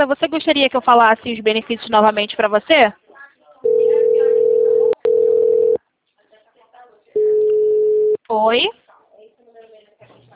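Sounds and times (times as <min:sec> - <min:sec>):
speech: 0:00.0 - 0:03.0, 0:08.3 - 0:08.8
telephone hold tone on a bank account-opening call: 0:03.7 - 0:05.8, 0:07.2 - 0:08.2.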